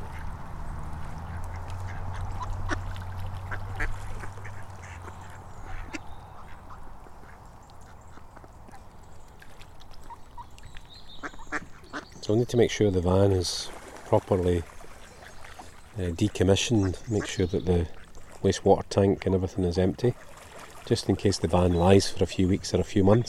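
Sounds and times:
flock of fifteen to twenty ducks quacking: 0:01.0 - 0:08.8, 0:11.2 - 0:12.1, 0:16.6 - 0:18.3, 0:21.6 - 0:23.2
speech: 0:12.3 - 0:14.7, 0:16.0 - 0:20.3, 0:20.9 - 0:23.2.

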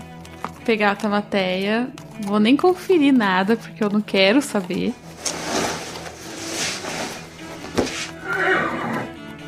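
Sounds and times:
speech: 0:00.7 - 0:05.4
horse neighing and whinnying: 0:08.0 - 0:09.2.

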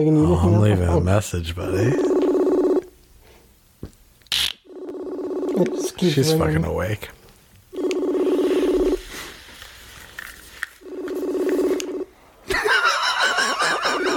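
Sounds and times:
speech: 0:00.0 - 0:02.2, 0:05.6 - 0:07.2
long electronic ringback tones on a phone line: 0:01.9 - 0:02.9, 0:04.7 - 0:06.0, 0:07.7 - 0:09.0, 0:10.8 - 0:12.1
laughter: 0:12.5 - 0:14.1.

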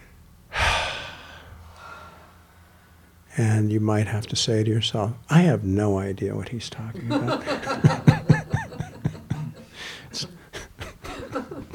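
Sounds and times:
deep breath: 0:00.5 - 0:03.1, 0:09.6 - 0:10.2
speech: 0:03.4 - 0:08.2
laughter: 0:07.0 - 0:11.7.

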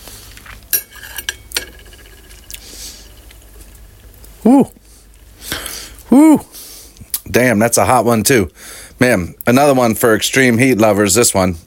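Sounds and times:
spoon clinking while someone tastes hot sauce: 0:00.7 - 0:03.7
speech: 0:04.4 - 0:04.8, 0:06.1 - 0:06.5, 0:07.4 - 0:11.6.

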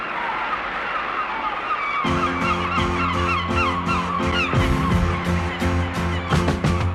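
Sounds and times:
rushing noisy ambience: 0:00.0 - 0:06.9
seagulls calling: 0:00.0 - 0:06.9
music track: 0:02.1 - 0:06.9.

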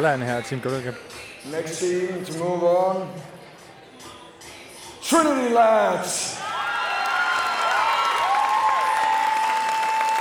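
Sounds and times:
speech: 0:00.0 - 0:03.4, 0:05.1 - 0:06.4
crowd of local fans clapping and cheering: 0:06.4 - 0:10.1.

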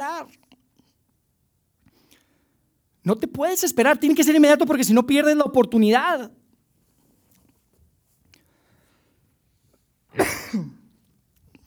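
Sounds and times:
speech: 0:03.0 - 0:06.4
person coughing harshly: 0:10.2 - 0:10.9.

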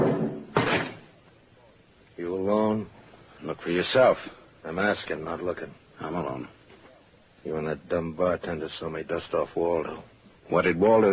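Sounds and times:
door kicked shut: 0:00.0 - 0:01.1
speech: 0:02.2 - 0:06.6, 0:07.4 - 0:11.1.

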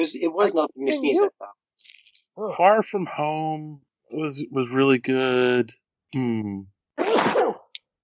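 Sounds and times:
speech: 0:00.0 - 0:01.6, 0:02.4 - 0:07.6
sneeze: 0:07.0 - 0:07.7.

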